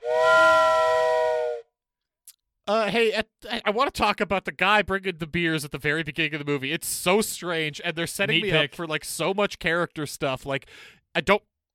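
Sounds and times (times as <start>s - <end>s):
whistle blast: 0.0s - 1.7s
speech: 2.7s - 11.5s.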